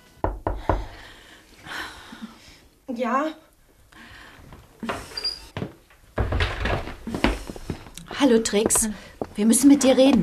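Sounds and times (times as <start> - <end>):
knocking on a wooden room door: 0.2 - 1.0
speech: 3.0 - 3.4, 8.2 - 10.2.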